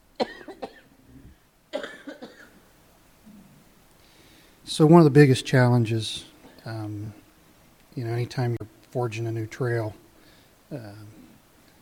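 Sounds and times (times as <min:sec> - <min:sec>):
faint noise: 0:00.0 - 0:11.8
harsh coughing: 0:00.2 - 0:00.9, 0:01.7 - 0:02.6
speech: 0:04.7 - 0:07.2, 0:08.0 - 0:10.0, 0:10.7 - 0:11.2.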